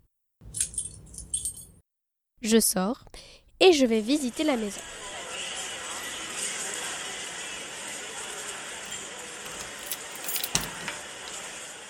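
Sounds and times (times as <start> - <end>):
house keys jingling as a key is taken: 0.4 - 1.7, 8.9 - 11.4
speech: 2.4 - 5.0.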